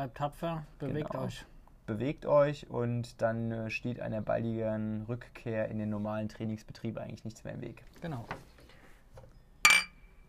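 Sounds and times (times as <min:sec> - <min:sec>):
speech: 0:00.0 - 0:08.5
glasses clinking together in a toast: 0:09.6 - 0:10.2.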